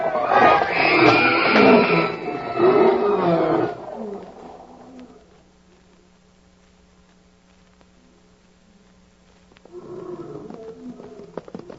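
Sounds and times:
escaped big cats roaring: 0.0 - 5.2, 9.7 - 11.7.

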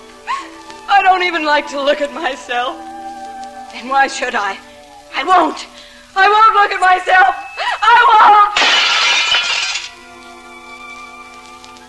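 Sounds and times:
speech: 1.1 - 2.9, 3.7 - 8.4
mirror smashing: 8.5 - 10.1
shattered glass shards tinkling: 8.6 - 10.0.

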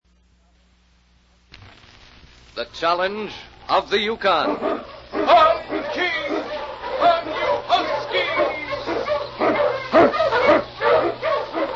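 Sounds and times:
speech: 2.6 - 6.4
Eskimo sled dog barking and yipping: 4.3 - 11.7.

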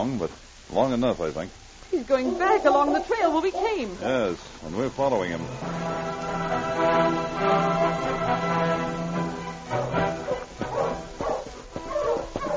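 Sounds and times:
speech: 0.0 - 9.0
agitated dog barking and whining: 2.1 - 3.8, 9.7 - 12.5.

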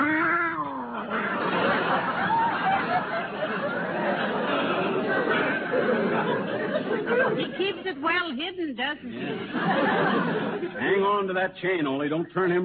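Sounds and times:
cat yowling: 0.0 - 1.0
laughter: 0.6 - 8.0, 9.1 - 11.2
speech: 7.8 - 12.6.

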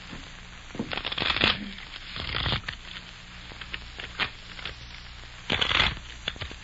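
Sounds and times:
riffle shuffling of a deck of playing cards: 0.8 - 4.8, 5.5 - 6.6.

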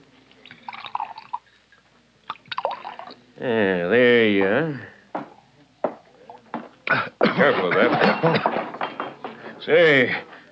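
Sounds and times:
liquor glugging from a bottle into a glass at a bar: 0.4 - 1.5, 2.3 - 3.2
speech: 3.4 - 4.9, 7.4 - 8.5, 9.6 - 10.3
laughter: 6.9 - 10.4.

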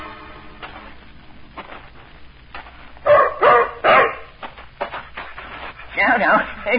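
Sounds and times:
shuffling: 0.5 - 6.7
German shepherd dog barking: 3.1 - 4.3.

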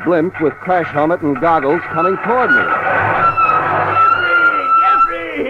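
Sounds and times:
speech: 0.0 - 3.0
1930 hot rod car with 1947 engine roaring: 0.0 - 4.4
hot rod car tires squealing in a skid: 1.4 - 5.3.

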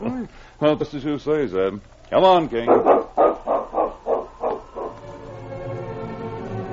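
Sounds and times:
speech: 0.0 - 3.0
dog barking: 2.6 - 5.1.

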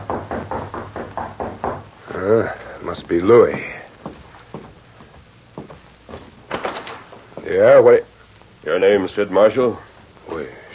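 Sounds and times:
light knocking on a door: 0.0 - 1.9
speech: 2.2 - 3.8, 7.5 - 8.1, 8.7 - 10.6.

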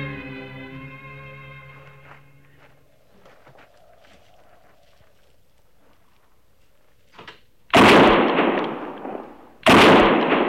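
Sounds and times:
gunshot bringing down an antelope: 7.7 - 10.4.

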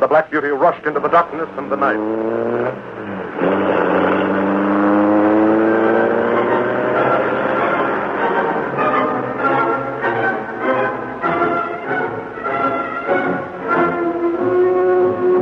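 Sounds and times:
car engine roaring and accelerating away: 0.0 - 15.3
speech: 0.1 - 3.9.

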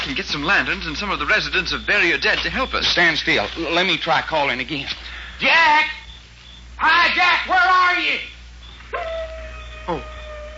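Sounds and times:
speech: 0.1 - 6.0, 6.8 - 8.3, 9.9 - 10.1
wolf howling in the dark: 8.9 - 10.5.

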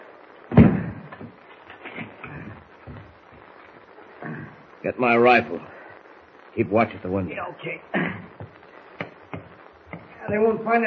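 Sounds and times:
shack door in the woods slamming shut: 0.5 - 1.0
speech: 4.8 - 5.8, 6.6 - 8.2, 10.3 - 10.8.

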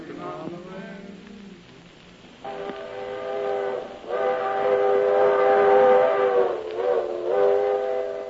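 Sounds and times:
small locomotive whistle blasts in a congested railroad yard: 2.4 - 8.2.

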